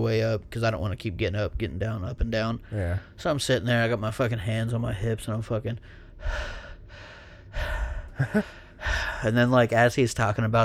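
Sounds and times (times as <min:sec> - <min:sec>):
speech: 0:00.0 - 0:06.6, 0:07.6 - 0:10.6
person imitating heavy winded panting after exercise: 0:05.9 - 0:09.3.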